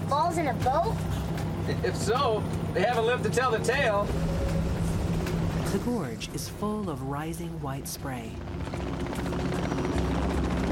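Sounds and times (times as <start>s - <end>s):
helicopter rotor noise while landing on a lawn: 0.0s - 10.7s
speech: 0.2s - 4.4s, 5.7s - 9.3s.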